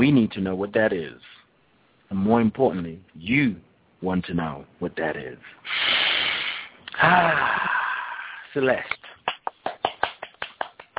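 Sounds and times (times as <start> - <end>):
speech: 0.0 - 1.4, 2.1 - 5.9, 7.0 - 7.8, 8.5 - 9.0
quick hand claps in a steady rhythm: 8.8 - 10.9.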